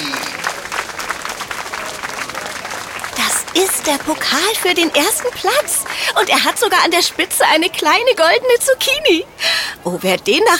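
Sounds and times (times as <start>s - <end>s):
audience applause: 0.0s - 8.1s
speech: 3.6s - 10.5s.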